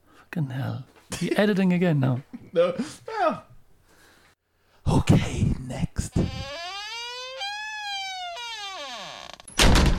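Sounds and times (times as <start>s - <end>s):
speech: 0.4s - 3.5s, 5.0s - 6.2s
door hinge creaking: 6.1s - 9.9s.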